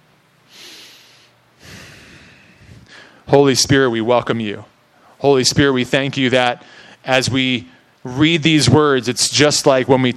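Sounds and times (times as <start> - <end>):
person taking deep breaths at a church gathering: 0.5 - 3.3, 6.6 - 7.0
speech: 3.3 - 10.1.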